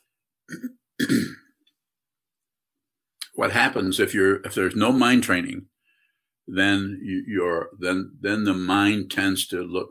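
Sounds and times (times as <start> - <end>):
speech: 0.5 - 0.8, 3.4 - 5.7, 6.5 - 9.8
person clearing throat: 0.5 - 1.6.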